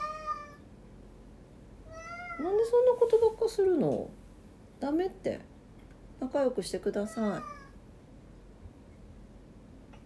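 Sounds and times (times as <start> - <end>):
pet cat meowing in a Japanese-style tatami room: 0.0 - 0.7, 1.9 - 2.6, 7.0 - 7.8
low noise: 0.0 - 10.0
speech: 2.4 - 4.2, 4.8 - 5.5, 6.2 - 7.6.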